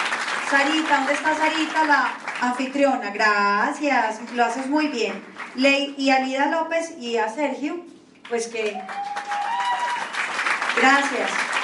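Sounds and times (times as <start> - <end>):
audience applause of many hands clapping at range: 0.0 - 2.4, 8.7 - 11.6
speech: 0.5 - 9.5, 10.8 - 11.4.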